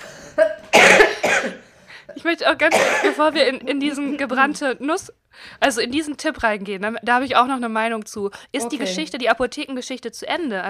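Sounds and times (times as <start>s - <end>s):
person coughing: 0.3s - 1.7s, 2.7s - 3.3s
speech: 2.2s - 10.6s.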